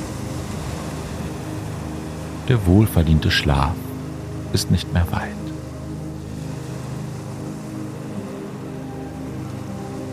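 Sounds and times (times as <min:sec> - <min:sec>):
ocean waves washing: 0:00.0 - 0:10.1
speech: 0:02.5 - 0:03.8, 0:04.5 - 0:05.4.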